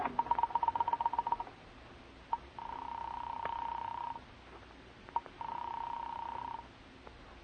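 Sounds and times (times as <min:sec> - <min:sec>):
telephone being dialed in a phone booth: 0:00.0 - 0:01.5, 0:02.3 - 0:04.2, 0:05.1 - 0:06.6.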